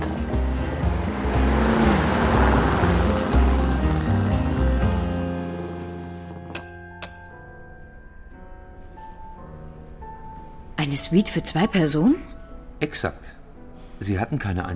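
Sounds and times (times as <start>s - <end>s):
car driving fast: 0.0s - 6.3s
sharp ringing tones: 6.6s - 9.1s
speech: 11.0s - 13.4s, 14.0s - 14.7s.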